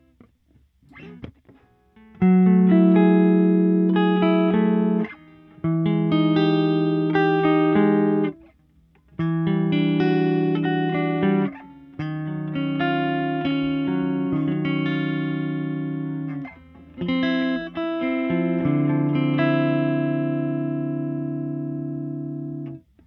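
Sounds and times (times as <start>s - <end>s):
Fender Twin Reverb guitar amplifier: 0.0s - 23.0s.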